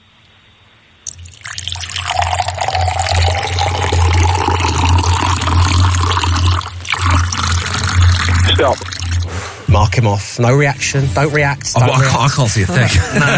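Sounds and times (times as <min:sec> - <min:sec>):
liquid being poured: 0:01.1 - 0:09.7
speech: 0:08.6 - 0:08.8, 0:09.7 - 0:13.3
laughter: 0:11.7 - 0:13.3.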